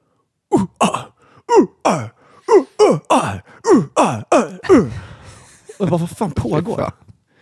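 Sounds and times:
person imitating rhythmic grunting of kayakers paddling: 0.5 - 5.4
speech: 5.9 - 7.0.

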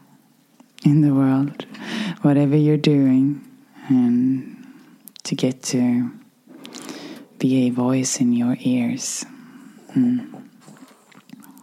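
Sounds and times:
speech: 0.8 - 4.6, 5.2 - 6.2, 7.4 - 10.5
sleeping dog soft breathing: 9.3 - 11.6.

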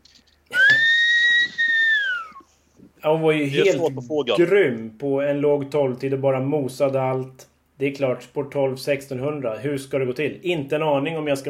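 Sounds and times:
person whistling one long steady note: 0.5 - 2.5
speech: 3.0 - 11.4.

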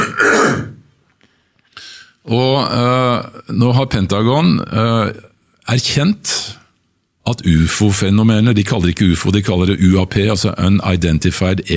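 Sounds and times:
throat clearing: 0.0 - 0.8
speech: 2.3 - 6.6, 7.3 - 11.7.

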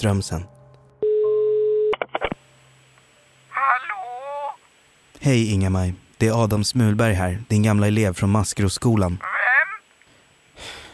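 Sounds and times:
speech: 0.0 - 0.6, 5.2 - 9.4
steady telephone line tone of an outgoing call: 1.0 - 2.0.

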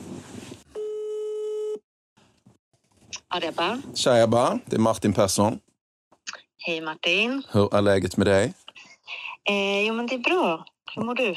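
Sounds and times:
telephone call ringing tone: 0.8 - 1.8
speech: 3.3 - 5.7, 6.6 - 8.6, 9.5 - 11.3.

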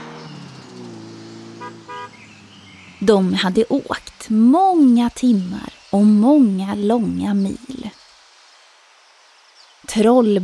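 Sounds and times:
old car horn tooting: 1.5 - 2.3
speech: 3.0 - 8.0, 10.0 - 10.4.

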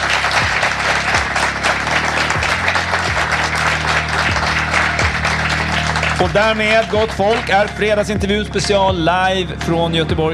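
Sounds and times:
live audience applause at a restaurant in Gothenburg Sweden: 0.0 - 8.1
speech: 6.2 - 10.3.

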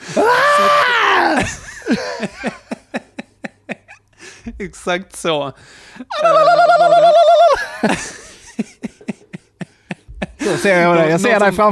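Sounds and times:
voice imitating loud exaggerated wailing and heavy crying: 0.0 - 2.3, 6.1 - 8.0
speech: 0.2 - 2.6, 4.6 - 8.2, 10.5 - 11.7
laughter: 1.2 - 4.2, 6.1 - 11.2.

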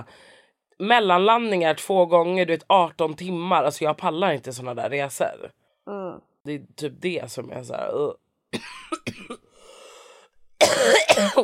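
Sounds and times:
speech: 0.0 - 9.4, 10.8 - 11.4
heavy chesty cough: 8.5 - 9.5, 10.6 - 11.4
wheezy rasping breath: 9.5 - 10.4.

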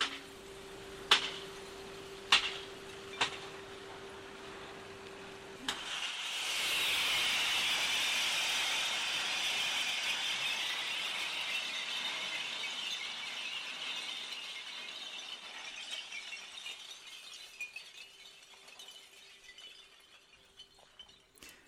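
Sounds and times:
truck load of glass crashing and sliding onto a pile of coloured glass: 0.0 - 21.6
glass clinks: 10.6 - 21.6.

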